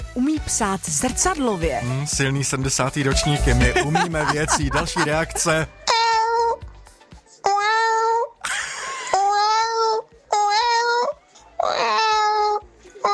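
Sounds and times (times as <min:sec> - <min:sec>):
speech: 0:00.2 - 0:05.8
laughter: 0:03.1 - 0:05.7, 0:08.5 - 0:09.2
person imitating cat meows: 0:05.9 - 0:06.6, 0:07.4 - 0:08.3, 0:09.2 - 0:13.1.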